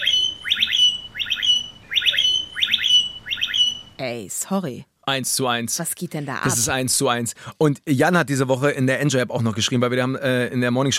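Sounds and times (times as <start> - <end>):
blackbirds mimicking an e-scooter alarm with rapid beeping notes: 0.0 - 4.0
speech: 4.0 - 10.9.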